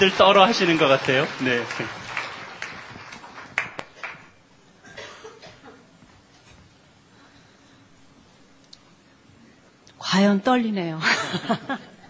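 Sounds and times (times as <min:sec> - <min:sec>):
speech: 0:00.0 - 0:02.0, 0:10.2 - 0:11.9
audience clapping in a large church: 0:00.0 - 0:04.4
laughter: 0:11.0 - 0:12.0.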